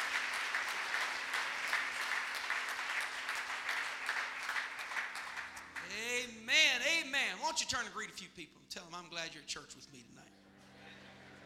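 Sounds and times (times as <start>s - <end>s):
large crowd applauding: 0.0s - 6.4s
speech: 6.8s - 10.4s.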